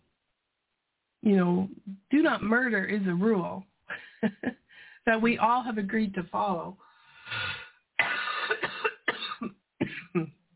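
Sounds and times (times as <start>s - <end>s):
speech: 1.2s - 7.5s, 10.2s - 10.4s
person coughing harshly: 8.0s - 10.3s.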